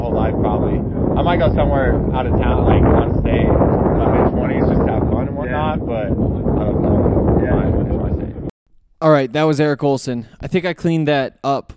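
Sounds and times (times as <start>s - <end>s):
wind buffeting a microphone: 0.0s - 8.5s
speech: 0.6s - 7.6s, 9.0s - 11.7s.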